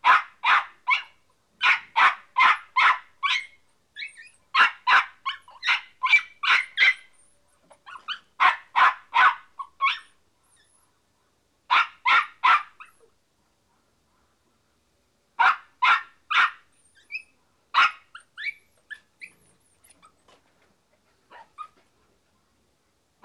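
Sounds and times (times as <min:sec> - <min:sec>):
dog barking: 0:00.0 - 0:03.6, 0:04.6 - 0:07.1, 0:07.9 - 0:10.1, 0:11.7 - 0:12.9, 0:15.4 - 0:16.7, 0:17.8 - 0:18.3, 0:21.3 - 0:21.7
dog yipping and whining: 0:00.9 - 0:01.8, 0:02.4 - 0:08.4, 0:09.2 - 0:10.8, 0:15.9 - 0:20.4, 0:21.3 - 0:21.8.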